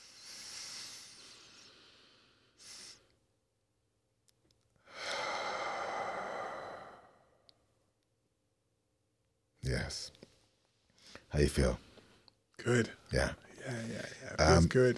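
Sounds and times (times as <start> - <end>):
slow deep breathing during a guided breathing exercise: 0.0 - 3.2, 4.8 - 7.6
speech: 9.8 - 10.2, 11.3 - 11.8, 12.6 - 14.9.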